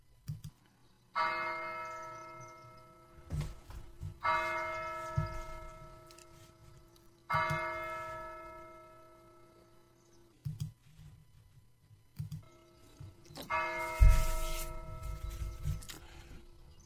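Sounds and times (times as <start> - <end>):
church bell tolling at St. Joseph's Catholic Church in Dover, Ohio: 1.2 - 3.3, 4.2 - 6.4, 7.3 - 9.6, 13.5 - 15.6.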